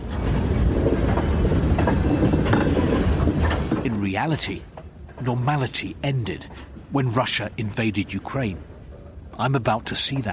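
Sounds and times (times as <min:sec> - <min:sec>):
faint rhythmic clatter of goods train wagons on rails: 0:00.0 - 0:10.3
goods train passing on rails: 0:00.0 - 0:10.3
speech: 0:04.2 - 0:08.7, 0:09.4 - 0:10.3.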